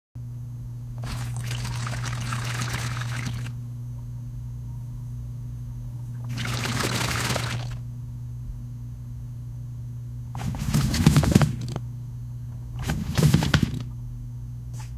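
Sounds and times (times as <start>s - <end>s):
cards flushing: 0.9s - 3.6s, 6.1s - 7.8s, 10.4s - 11.8s, 12.7s - 14.0s.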